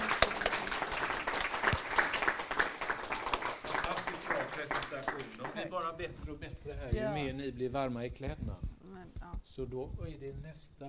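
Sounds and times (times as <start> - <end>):
audience applause: 0.0 - 5.8
speech: 5.8 - 8.6, 9.4 - 10.8.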